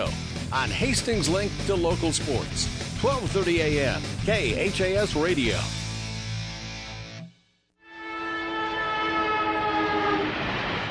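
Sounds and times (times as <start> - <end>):
speech: 0.0 - 5.8
train horn blaring: 7.8 - 10.8.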